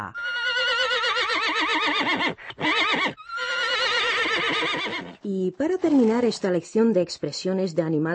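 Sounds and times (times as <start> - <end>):
speech: 0.0 - 0.4, 5.3 - 8.1
horse neighing: 0.1 - 5.2.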